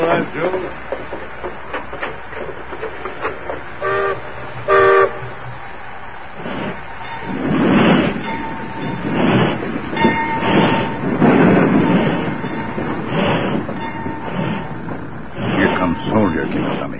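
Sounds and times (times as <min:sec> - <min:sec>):
speech: 0:00.0 - 0:00.9
steam train chuffing as it pulls out: 0:00.0 - 0:16.9
steam train whistle blasts: 0:03.8 - 0:05.4.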